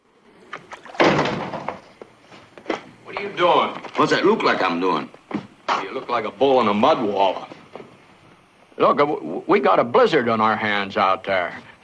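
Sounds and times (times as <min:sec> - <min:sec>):
door slamming shut: 0:00.9 - 0:01.8
speech: 0:03.2 - 0:05.2, 0:06.0 - 0:07.5, 0:08.8 - 0:11.7.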